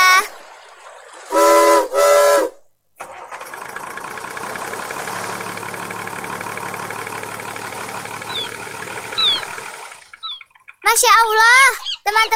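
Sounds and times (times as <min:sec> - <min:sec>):
ship engine rumbling drone: 0:00.0 - 0:11.7
ship's steam whistle blasts as the ship is started: 0:01.3 - 0:02.6
faint high-pitched chirps: 0:08.2 - 0:09.6, 0:10.2 - 0:12.2
speech: 0:11.0 - 0:12.3.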